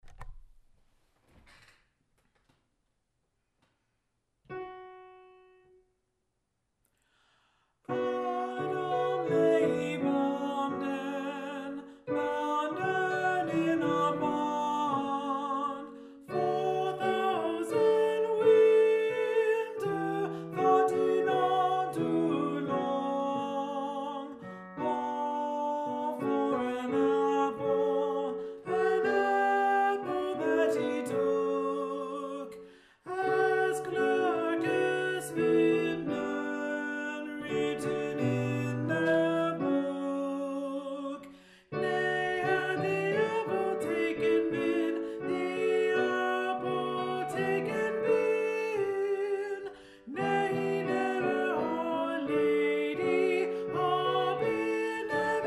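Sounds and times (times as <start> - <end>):
alto voice singing a carol: 7.9 - 55.4.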